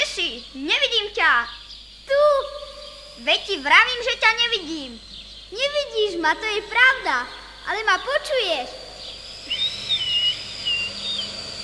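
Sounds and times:
soft steady hiss: 0.0s - 11.6s
speech: 0.6s - 2.5s, 3.2s - 8.8s
whistling: 2.6s - 11.6s.

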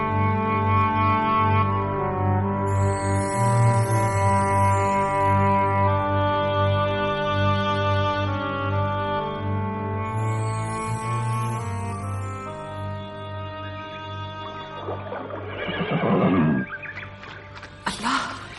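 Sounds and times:
sustained musical drone: 0.0s - 18.5s
dark horse neighing: 14.9s - 17.0s.

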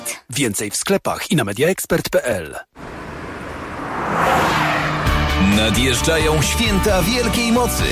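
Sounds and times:
speech: 0.4s - 3.0s, 5.4s - 7.8s
Honda HR-V car with 1.5 turbo engine and road rush driving past: 2.7s - 7.4s.

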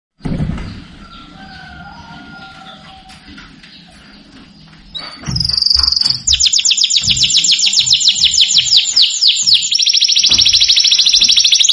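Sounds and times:
Belgian domestic canary song with rapid high trill: 5.4s - 11.7s.

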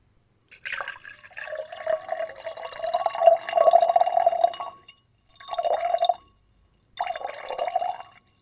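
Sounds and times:
water poured from one glass into another: 0.5s - 6.3s, 7.0s - 8.3s.

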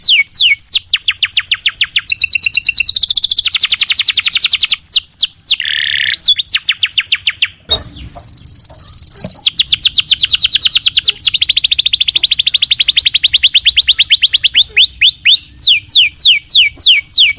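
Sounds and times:
canary song tutoring recording: 0.0s - 17.3s.

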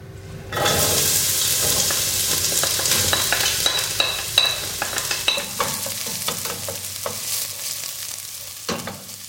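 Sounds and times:
onions frying and sizzling in a pan: 0.5s - 9.2s
spoon scraping and clinking in a pan while stirring onions: 0.6s - 7.8s.

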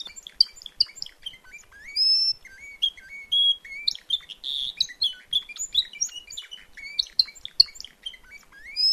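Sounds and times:
Timbrado canary singing at a canary event: 0.0s - 8.9s.

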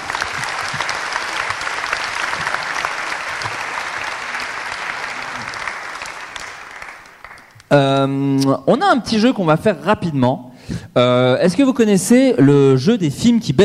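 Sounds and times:
audience applause: 0.0s - 7.7s
speech: 7.7s - 13.6s.

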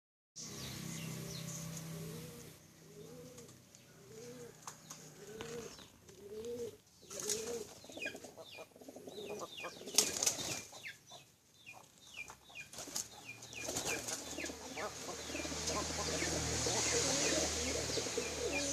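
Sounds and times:
female bird calling with arched notes: 0.4s - 18.7s.

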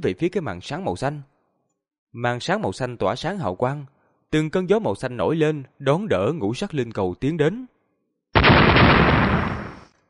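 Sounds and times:
speech: 0.0s - 1.3s, 2.1s - 7.7s
loud explosions: 8.4s - 9.9s.

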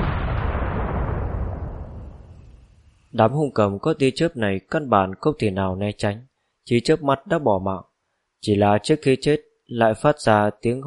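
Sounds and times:
fortress cannon fire explosion booming in the sky: 0.0s - 2.9s
speech: 3.1s - 10.8s.

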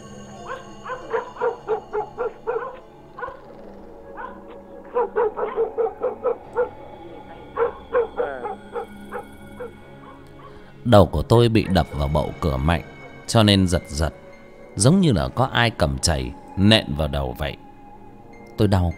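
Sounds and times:
dogs barking around a village: 0.0s - 10.7s
speech: 10.9s - 14.2s, 14.8s - 17.6s, 18.6s - 18.9s.

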